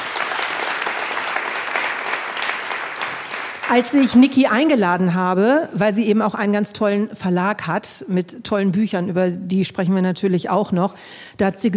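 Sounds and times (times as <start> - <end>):
audience applause: 0.0 - 4.1
speech: 3.7 - 11.7.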